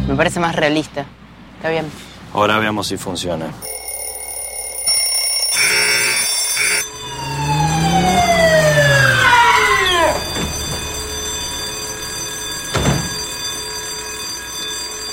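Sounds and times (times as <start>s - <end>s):
speech: 0.2s - 3.8s
old alarm clock ringing inside a safe: 3.6s - 15.1s.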